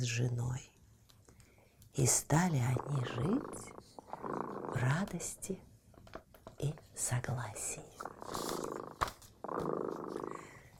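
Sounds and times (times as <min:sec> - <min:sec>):
speech: 0:00.0 - 0:00.8, 0:02.0 - 0:05.7, 0:06.6 - 0:10.5
cat purring: 0:02.4 - 0:05.5, 0:07.6 - 0:10.7.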